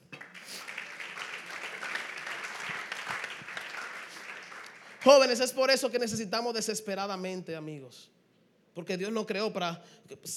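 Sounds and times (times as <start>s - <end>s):
crowd applause: 0.0s - 5.4s
speech: 5.0s - 8.2s, 8.8s - 10.3s.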